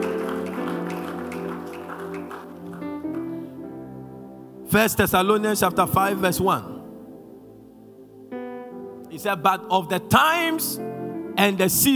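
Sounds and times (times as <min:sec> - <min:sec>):
audience clapping hands steadily: 0:00.0 - 0:03.4
loud sustained organ or keyboard music: 0:00.0 - 0:11.9
speech: 0:04.7 - 0:06.7, 0:09.2 - 0:11.9.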